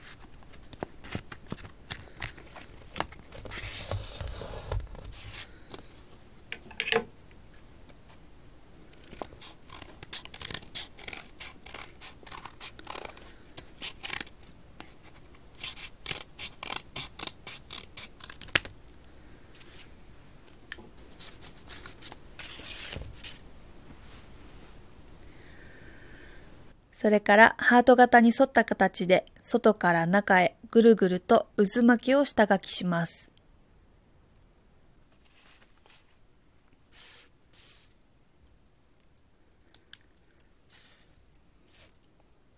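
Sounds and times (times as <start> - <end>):
scissors cutting construction paper hearts: 8.9 - 18.7
speech: 27.0 - 33.2.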